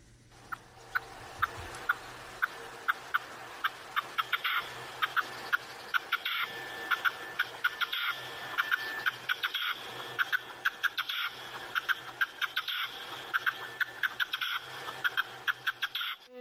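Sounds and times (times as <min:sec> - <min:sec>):
red-legged partridge calling: 0:00.5 - 0:16.3.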